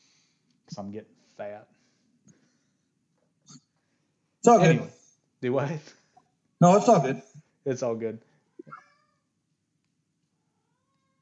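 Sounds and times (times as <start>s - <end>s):
speech: 0.8s - 1.8s, 4.4s - 6.0s, 6.6s - 8.8s
cat carrying a dog bone meowing: 8.5s - 9.3s, 10.5s - 11.2s.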